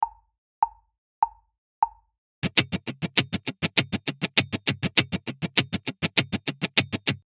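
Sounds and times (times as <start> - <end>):
muted funk guitar sixteenth-note accents: 2.4 - 7.2.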